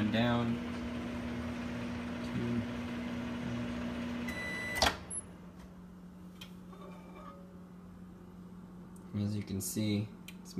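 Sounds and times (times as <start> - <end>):
microwave oven running on quick start while melting an ingredient: 0.0 - 10.5
speech: 0.1 - 0.8, 9.2 - 10.5
microwave oven click: 4.3 - 5.2.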